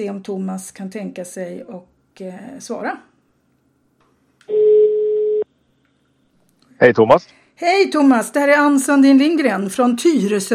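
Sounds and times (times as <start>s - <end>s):
speech: 0.0s - 3.1s, 6.8s - 10.5s
telephone ringback tone while calling: 4.5s - 5.4s.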